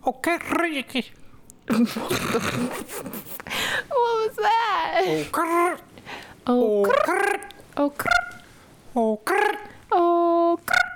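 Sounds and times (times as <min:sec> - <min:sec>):
speech: 0:00.1 - 0:08.3, 0:09.0 - 0:10.7
person making squawky warbling vocal calls imitating a bird: 0:05.1 - 0:05.9, 0:06.7 - 0:08.5, 0:09.1 - 0:10.9.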